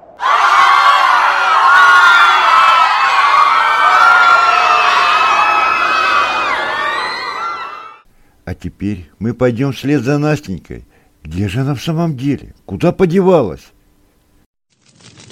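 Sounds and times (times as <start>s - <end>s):
audience of children shouting a name: 0.2s - 8.0s
speech: 8.6s - 13.8s.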